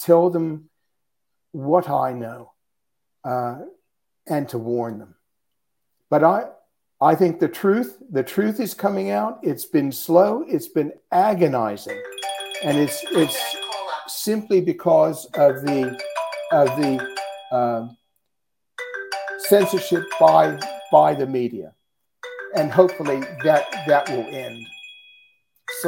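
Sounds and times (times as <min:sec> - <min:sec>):
speech: 0:00.0 - 0:00.7, 0:01.5 - 0:02.5, 0:03.2 - 0:05.2, 0:06.1 - 0:18.0, 0:19.5 - 0:21.8, 0:22.5 - 0:24.8
phone ringtone chiming with repeating electronic tones: 0:11.9 - 0:14.6, 0:15.3 - 0:17.9, 0:18.8 - 0:21.5, 0:22.2 - 0:25.8.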